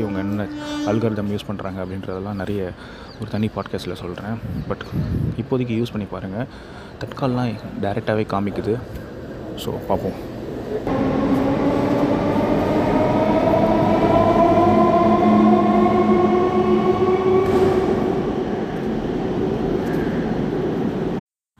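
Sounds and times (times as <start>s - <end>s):
speech: 0.0s - 11.4s
train running on rails: 8.8s - 21.2s.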